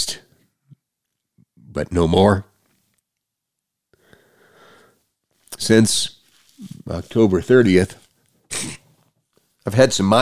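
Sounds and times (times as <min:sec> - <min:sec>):
speech: 0:01.8 - 0:02.5, 0:05.6 - 0:08.0, 0:09.6 - 0:10.1
person sniffing: 0:06.5 - 0:07.0, 0:08.5 - 0:09.0.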